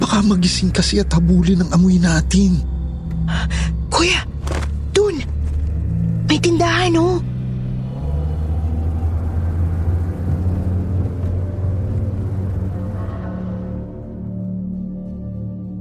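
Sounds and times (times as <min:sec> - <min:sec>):
car engine rumbling: 0:00.0 - 0:14.5
speech: 0:00.2 - 0:02.7, 0:06.4 - 0:07.3
car slowing to a stop in front of a store: 0:04.7 - 0:14.6.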